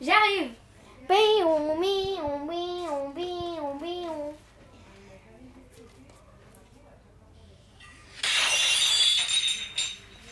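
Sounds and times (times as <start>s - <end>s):
speech: 0.0s - 3.9s
dropped plate shattering: 7.8s - 10.3s.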